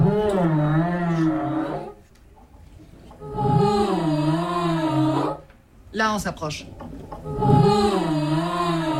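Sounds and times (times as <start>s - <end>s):
young choir girls imitating humpback whale song: 0.0s - 2.0s, 3.2s - 5.4s, 7.2s - 8.9s
speech: 6.0s - 7.8s.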